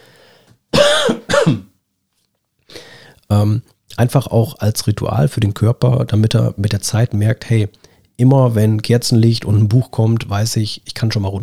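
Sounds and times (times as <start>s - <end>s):
throat clearing: 0.8s - 1.7s
coughing: 0.8s - 1.8s
speech: 1.5s - 1.7s, 3.4s - 11.4s.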